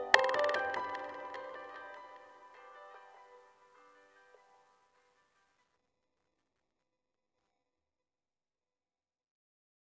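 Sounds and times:
percussion one-shot: 0:00.1 - 0:02.3
piano one-shot: 0:00.1 - 0:02.3.

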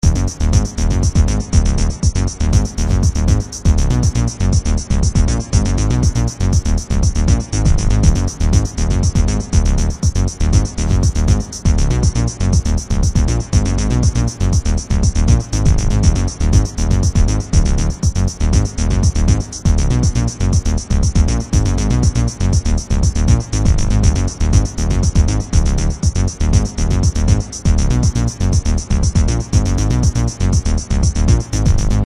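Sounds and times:
bass: 0:00.0 - 0:32.0
drums: 0:00.0 - 0:32.0.

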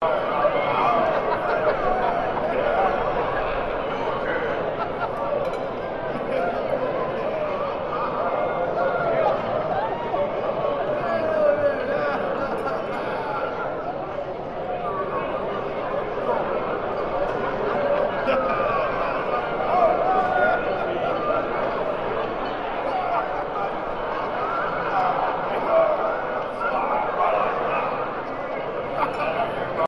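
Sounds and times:
dinner crowd walla in a banquet hall: 0:00.0 - 0:29.8
laughter: 0:00.0 - 0:29.8.

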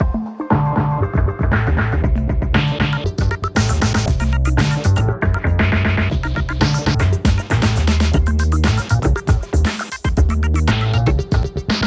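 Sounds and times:
90s hip hop game music at 118 BPM: 0:00.0 - 0:11.8.

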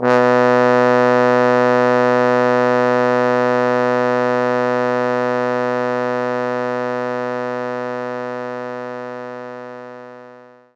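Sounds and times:
trombone playing B1: 0:00.0 - 0:07.2.

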